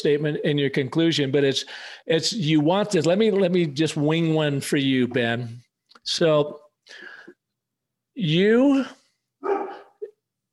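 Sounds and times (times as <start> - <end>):
speech: 0.0 - 7.1, 8.2 - 9.0
dog barking: 9.4 - 10.0.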